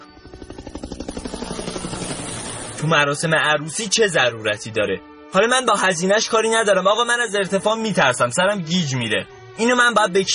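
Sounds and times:
helicopter flying with rotor chop and engine drone: 0.0s - 7.2s
speech: 2.8s - 10.3s.

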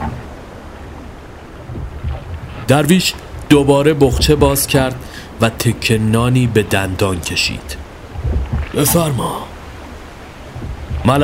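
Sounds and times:
oars dipping and pulling through water beside a boat: 0.0s - 5.3s, 7.8s - 11.2s
steady wash of water: 0.0s - 11.2s
wind: 0.0s - 11.2s
speech: 2.7s - 7.8s, 8.8s - 9.5s.

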